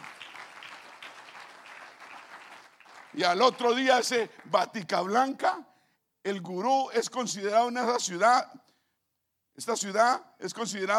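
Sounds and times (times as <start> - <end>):
crowd clapping: 0.0 - 5.1
speech: 3.2 - 8.6, 9.6 - 10.9.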